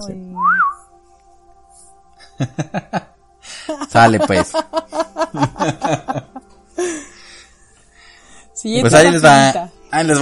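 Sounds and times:
speech: 0.0 - 0.6, 2.4 - 3.0, 4.0 - 6.0, 8.6 - 10.2
person whistling a clear note that slides up and down: 0.4 - 0.8
laughter: 2.2 - 7.0.

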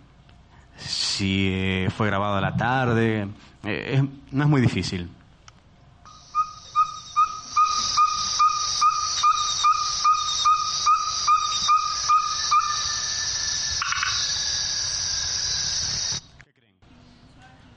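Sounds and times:
speech: 1.2 - 5.2
small frog or toad croaking: 6.1 - 16.2
buzzing chorus of night insects: 6.1 - 16.4.

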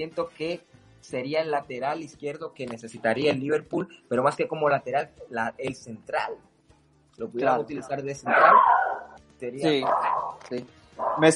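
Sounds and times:
speech: 0.0 - 6.5, 7.2 - 8.8, 9.4 - 11.3
dog barking: 8.3 - 10.4, 11.0 - 11.3.

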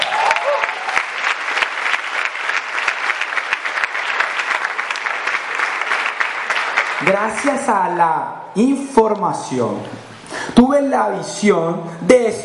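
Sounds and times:
audience applause: 0.0 - 7.7
speech: 7.1 - 12.4.

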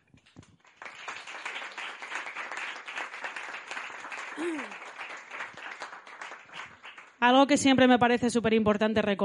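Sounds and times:
audience applause: 0.6 - 7.2
speech: 7.2 - 9.2.

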